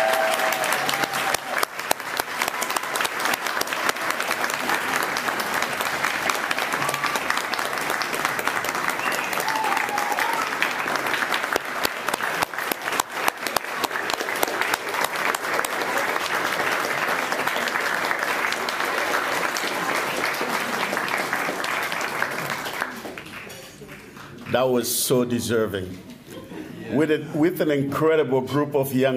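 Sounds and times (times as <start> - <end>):
people cheering: 0.0 - 23.3
sustained applause from a sizable audience: 0.0 - 24.7
speech: 24.6 - 26.1, 26.9 - 29.1.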